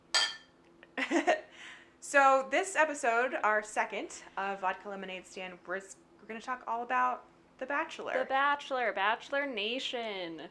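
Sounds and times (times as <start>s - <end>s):
glasses clinking in a toast: 0.1s - 0.5s
speech: 2.1s - 10.5s.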